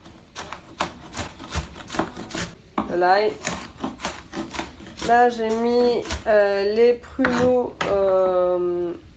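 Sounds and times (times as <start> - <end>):
knife chopping onions on a cutting board for prune sauce: 0.0 - 6.5
speech: 2.9 - 3.6, 5.1 - 9.0.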